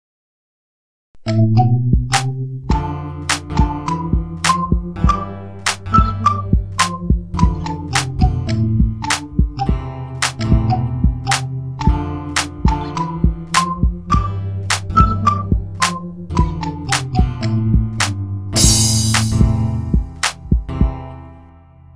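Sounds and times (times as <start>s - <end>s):
background music: 1.2s - 21.9s.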